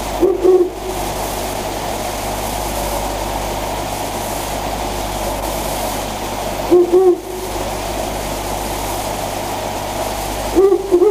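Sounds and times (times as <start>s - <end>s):
steady background noise: 0.0s - 11.0s
owl hooting: 0.2s - 0.9s, 6.7s - 7.4s, 10.5s - 11.0s.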